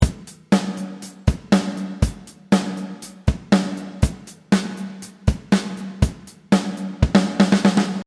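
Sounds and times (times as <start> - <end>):
reverse snare drum: 0.0 - 8.0.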